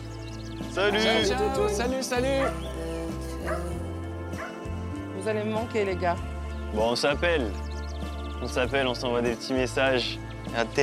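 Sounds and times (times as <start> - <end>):
speech: 0.8 - 3.8, 5.2 - 7.6, 8.4 - 10.8
short dog barks: 2.4 - 2.7, 3.4 - 3.8, 4.4 - 4.6.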